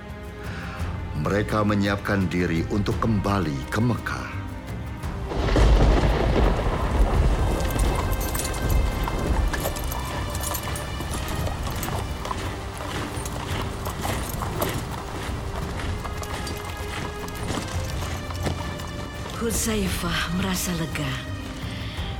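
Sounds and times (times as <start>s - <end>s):
speech: 1.2s - 4.4s, 19.5s - 21.3s
many camel hooves clip-clopping: 1.3s - 22.1s
deep rumbling wind: 5.0s - 22.1s.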